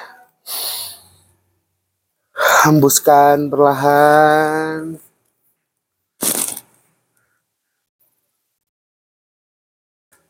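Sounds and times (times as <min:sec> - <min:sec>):
slow deep inhale through the nose: 0:00.1 - 0:01.3
speech: 0:02.6 - 0:05.1.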